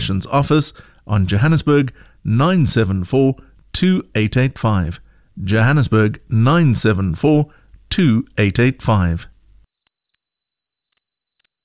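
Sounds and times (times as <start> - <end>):
speech: 0.0 - 9.3
crickets chirping sound effect: 9.7 - 11.6.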